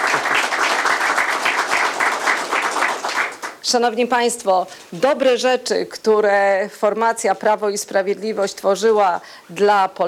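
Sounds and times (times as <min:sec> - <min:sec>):
audience applause: 0:00.0 - 0:03.6
speech: 0:03.7 - 0:10.0.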